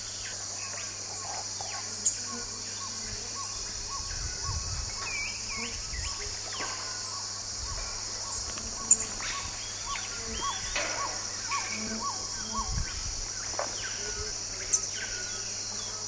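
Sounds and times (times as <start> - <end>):
Chlorophanes spiza calls: 0.2 - 15.9.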